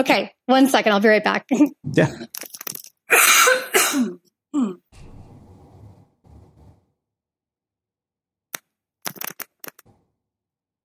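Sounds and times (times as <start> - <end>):
speech: 0.0 - 4.8
person coughing harshly from a lingering COVID cough: 3.1 - 4.8.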